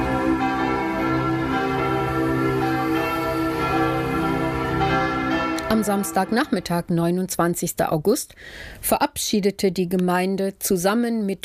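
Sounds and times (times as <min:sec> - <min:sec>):
church bells ringing in a peal: 0:00.0 - 0:07.2
speech: 0:05.7 - 0:11.4.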